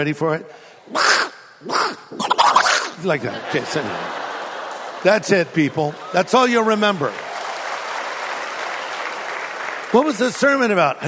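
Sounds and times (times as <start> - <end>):
speech: 0.0 - 2.3, 3.0 - 4.2, 5.0 - 7.2, 9.9 - 11.0
person imitating an angry cartoon duck with raspy squawks: 0.9 - 3.1
laughter: 2.8 - 7.2.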